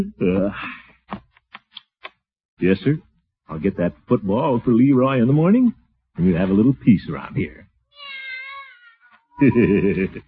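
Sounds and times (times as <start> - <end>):
speech: 0.0 - 0.8, 2.6 - 7.6, 9.4 - 10.2
cat meowing and caterwauling: 8.0 - 10.0
laughter: 9.4 - 10.2.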